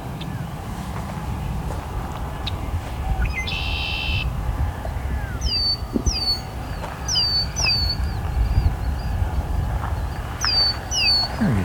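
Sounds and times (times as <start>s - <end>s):
red-winged blackbirds calling: 0.0s - 11.6s
steady low outdoor rumble: 0.0s - 11.6s.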